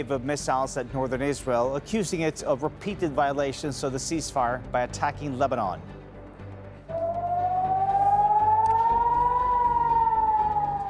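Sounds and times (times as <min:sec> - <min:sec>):
speech: 0:00.0 - 0:06.0
air raid siren wailing in a city: 0:06.9 - 0:10.8.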